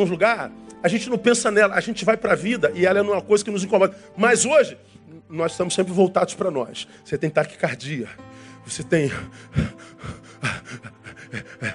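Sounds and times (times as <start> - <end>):
speech: 0.0 - 11.7
voice imitating rapid panting: 9.1 - 11.7
laughter: 10.4 - 11.7.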